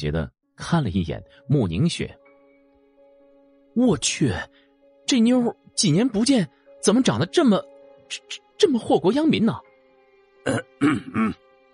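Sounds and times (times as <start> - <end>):
speech: 0.0 - 2.2, 3.8 - 9.7, 10.4 - 11.4
man clearing his throat: 10.5 - 11.4.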